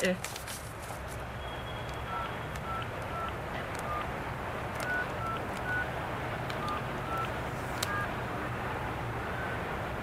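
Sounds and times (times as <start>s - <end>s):
speech: 0.0s - 0.4s
steady low hiss and rumble: 0.0s - 10.0s
short electronic phone dialing beeps: 1.4s - 4.2s, 4.8s - 8.1s.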